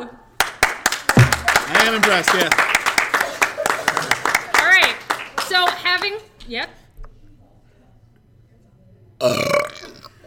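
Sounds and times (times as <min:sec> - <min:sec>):
people clapping: 0:00.4 - 0:06.2
speech: 0:01.9 - 0:02.8, 0:06.0 - 0:06.8
long loud gurgling burp: 0:09.2 - 0:10.2.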